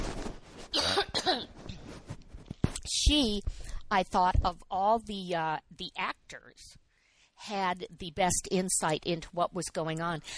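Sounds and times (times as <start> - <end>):
person coughing: 0.7 - 1.6
speech: 3.1 - 6.8, 7.4 - 10.3
quiet breathing: 6.8 - 7.4.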